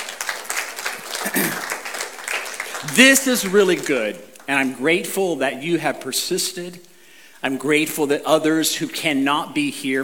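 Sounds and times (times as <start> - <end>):
audience applauding: 0.0 - 4.5
speech: 2.8 - 10.0.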